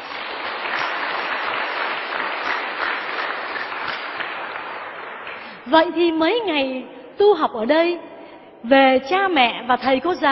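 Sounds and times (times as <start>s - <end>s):
large crowd of children clapping at a Buddhist temple: 0.0s - 5.7s
speech: 5.7s - 10.3s.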